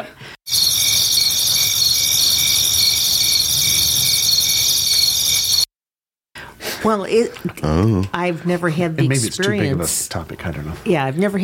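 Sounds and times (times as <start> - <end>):
dense chorus of crickets chirping: 0.5 - 5.7
speech: 6.8 - 11.4.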